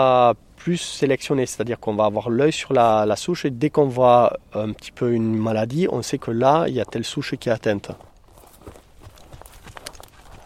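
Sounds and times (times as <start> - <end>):
speech: 0.0 - 8.1
draught mare hoof steps walking between vine rows in a vineyard: 6.8 - 10.4.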